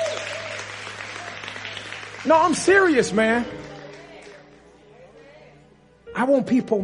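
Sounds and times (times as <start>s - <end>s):
modest audience clapping: 0.0s - 4.6s
speech: 2.2s - 3.6s, 6.2s - 6.8s.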